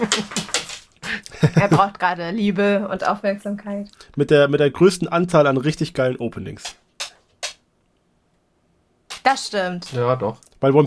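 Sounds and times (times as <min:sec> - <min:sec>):
dog clacking: 0:00.0 - 0:01.9, 0:06.6 - 0:07.6, 0:09.1 - 0:10.2
laughter: 0:00.0 - 0:02.0
speech: 0:01.4 - 0:06.8, 0:09.2 - 0:10.8.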